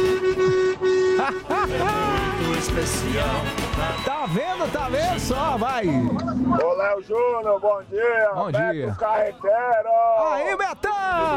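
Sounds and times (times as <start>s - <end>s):
vehicle horn honking: 0.0s - 2.6s
laughter: 1.0s - 4.0s
speech: 2.6s - 11.3s.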